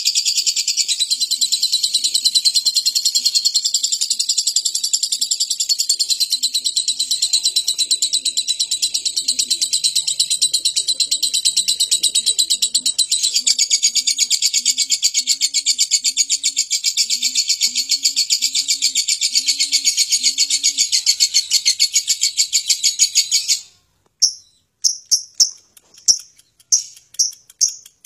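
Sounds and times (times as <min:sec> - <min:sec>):
lovebird long chattering trill: 0:00.0 - 0:28.0
soft low dove-like cooing: 0:06.0 - 0:21.6.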